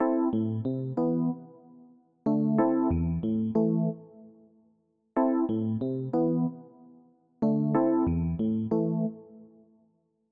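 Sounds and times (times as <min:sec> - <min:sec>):
Rhodes electric piano: 0:00.0 - 0:04.3, 0:05.2 - 0:06.8, 0:07.4 - 0:09.4.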